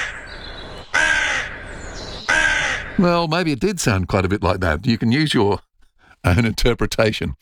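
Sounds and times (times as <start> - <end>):
crow cawing: 0.0 - 3.0
speech: 3.0 - 7.4.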